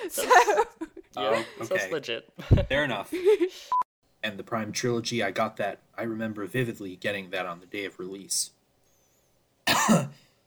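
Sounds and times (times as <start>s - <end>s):
speech: 0.1s - 8.6s, 9.7s - 10.2s
sharp cough: 9.6s - 10.3s.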